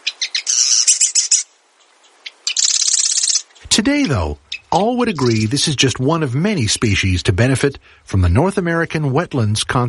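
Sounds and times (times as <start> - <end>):
Marsh Wren grating trill song: 0.0 - 5.7
speech: 3.7 - 9.8.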